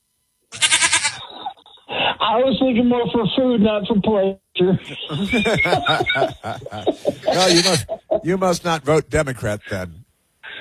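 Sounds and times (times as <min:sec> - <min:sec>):
goat bleating: 0:00.6 - 0:01.2, 0:07.3 - 0:08.0
speech: 0:02.2 - 0:10.0
laughter: 0:04.9 - 0:10.0.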